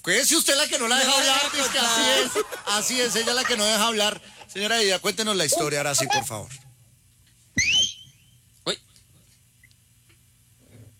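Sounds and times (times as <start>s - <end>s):
speech: 0.0s - 6.7s
laughter: 0.6s - 4.9s
person whistling sharply to get attention: 7.6s - 8.2s.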